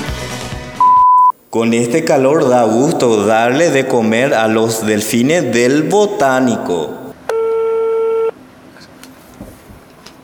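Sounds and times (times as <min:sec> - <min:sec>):
speech: 0:01.5 - 0:07.0
telephone busy tone on an unanswered call: 0:07.3 - 0:08.3.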